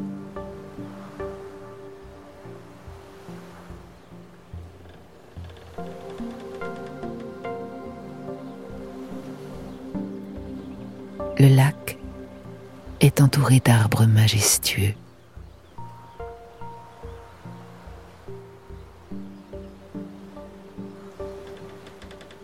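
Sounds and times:
gentle lapping waves on a lake at sunset: 0:00.0 - 0:22.4
wood creaking like a moored boat rocking: 0:04.0 - 0:08.5, 0:19.5 - 0:22.4
speech: 0:11.4 - 0:11.9, 0:13.1 - 0:15.0.

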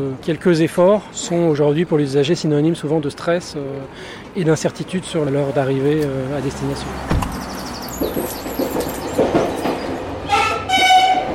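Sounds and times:
speech: 0:00.0 - 0:07.2
RER B commuter train rumbling past with rattling wheels: 0:02.8 - 0:11.3
RER B commuter train horn blast: 0:10.2 - 0:11.3.

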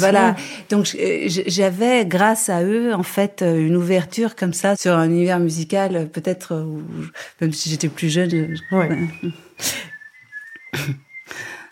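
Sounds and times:
speech: 0:00.0 - 0:09.9, 0:10.7 - 0:11.5
man whistling a tune: 0:08.5 - 0:11.7.

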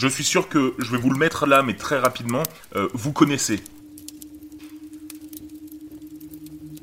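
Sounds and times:
speech: 0:00.0 - 0:03.8
faint scattered clicks and crackles: 0:00.0 - 0:06.8
steady low humming tone with fast pulsing wobble: 0:03.6 - 0:06.8.

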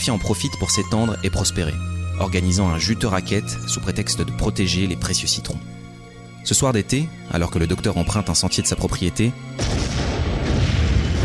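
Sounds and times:
speech: 0:00.0 - 0:10.0
loud booming gunshot blasts: 0:09.6 - 0:11.2.

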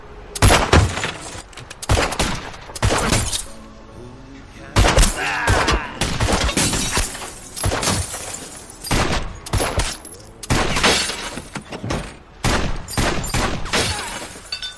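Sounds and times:
gunshots in a shootout in front of a pork store: 0:00.4 - 0:03.5, 0:04.8 - 0:11.5, 0:12.4 - 0:14.3.

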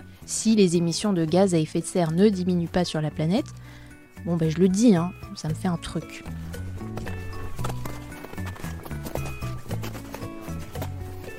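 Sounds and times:
speech: 0:00.3 - 0:06.6
crampon footsteps crunching on glacier snow: 0:06.0 - 0:11.3.

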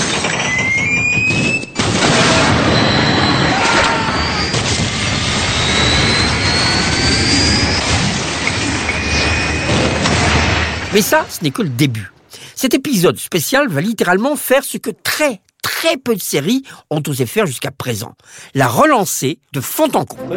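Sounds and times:
jet airplane engine roar: 0:00.0 - 0:11.4
speech: 0:11.0 - 0:20.3.

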